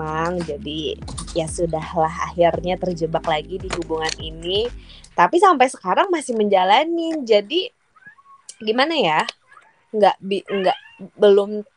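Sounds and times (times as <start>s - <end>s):
speech: 0.0s - 7.8s, 8.6s - 11.7s
pet cat meowing with wavering pitch: 10.5s - 11.1s.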